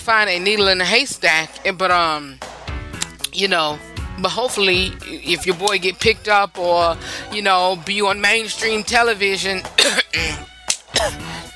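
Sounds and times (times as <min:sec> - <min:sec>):
speech: 0:00.1 - 0:02.5, 0:03.3 - 0:11.3
sharp coughs: 0:09.8 - 0:11.4.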